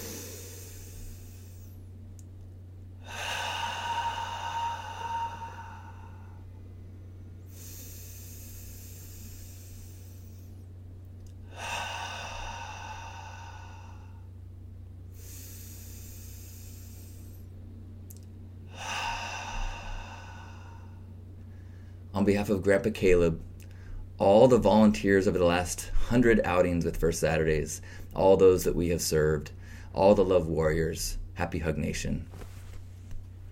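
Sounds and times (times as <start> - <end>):
slow deep breaths in through the nose and out through the mouth during a group breathing exercise: 0.0 - 1.9, 3.0 - 14.5, 15.1 - 17.6, 18.6 - 22.1, 23.6 - 24.2, 27.8 - 28.2, 29.5 - 30.0
steady low hum: 0.0 - 33.4
speech: 22.2 - 23.5, 24.2 - 32.4.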